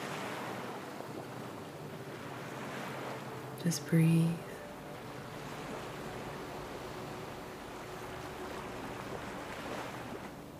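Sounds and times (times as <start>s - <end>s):
ocean waves crashing: 0.0s - 10.5s
speech: 3.6s - 4.4s.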